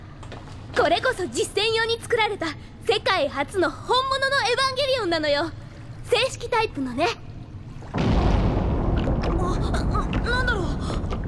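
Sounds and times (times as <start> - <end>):
speech: 0.8 - 7.2
heavy underwater explosion shockwave: 7.9 - 11.2.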